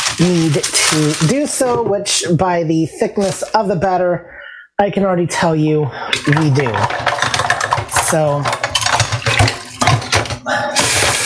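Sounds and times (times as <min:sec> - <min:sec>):
spoons being washed: 0:00.0 - 0:02.0, 0:06.1 - 0:11.2
speech: 0:00.2 - 0:07.1, 0:08.1 - 0:08.6
water running in a kitchen sink: 0:06.2 - 0:11.2.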